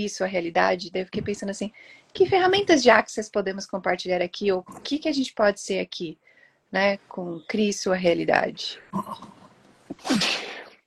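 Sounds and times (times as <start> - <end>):
speech: 0.0 - 9.4, 10.0 - 10.4
person sneezing from an allergy: 9.9 - 10.8.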